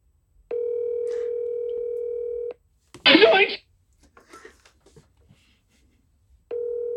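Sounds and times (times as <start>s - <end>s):
telephone ringback tone of an unanswered call: 0.5s - 2.5s, 6.5s - 6.9s
brief loud burst of noise: 3.1s - 3.6s.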